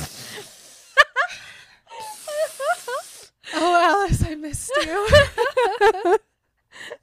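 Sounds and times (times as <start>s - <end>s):
person mimicking deep gasping sniffs: 0.0s - 1.0s, 1.9s - 3.5s
laughter: 4.8s - 6.2s.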